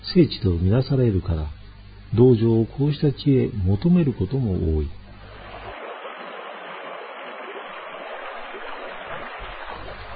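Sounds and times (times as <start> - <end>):
speech: 0.1 - 5.0
river rapids rushing: 5.4 - 10.1.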